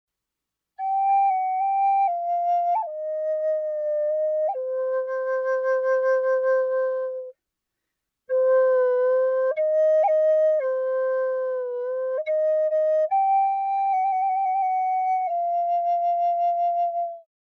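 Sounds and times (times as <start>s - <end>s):
medium lacewood flute in the key of C: 0.8s - 7.4s, 8.3s - 17.3s.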